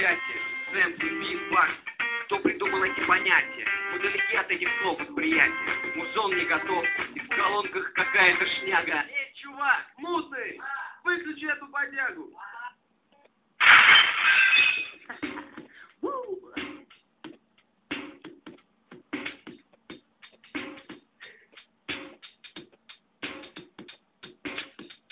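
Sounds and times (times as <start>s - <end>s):
speech: 0.1s - 12.6s
wine glass struck hard and shattering: 13.6s - 15.1s
falling glass shards clinking and tinkling: 14.2s - 15.0s.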